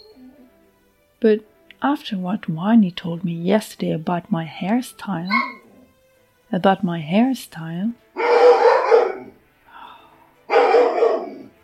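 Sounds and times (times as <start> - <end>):
speech: 1.2 - 5.6, 6.5 - 8.0
dog barking: 5.3 - 5.8, 8.2 - 9.4, 10.5 - 11.5.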